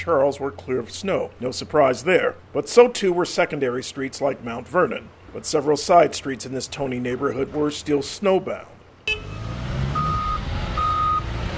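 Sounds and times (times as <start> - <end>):
speech: 0.0 - 9.4
low rumbling engine noise: 0.0 - 11.5
snowplow or salt truck reversing beeps at a public works yard on a frontage road: 9.1 - 11.5.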